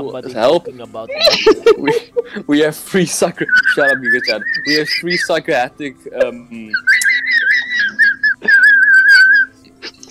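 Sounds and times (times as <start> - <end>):
speech: 0.0 - 6.9
laughter: 1.1 - 5.5, 6.2 - 10.0
high wavering whistling: 3.3 - 5.5, 6.7 - 9.5.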